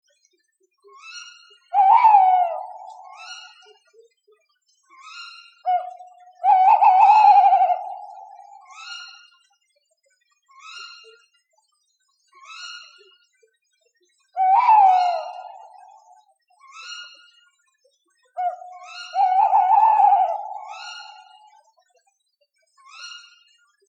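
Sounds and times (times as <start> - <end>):
tawny owl call: 1.8 - 3.5, 5.7 - 8.9, 14.4 - 16.0, 18.4 - 21.6.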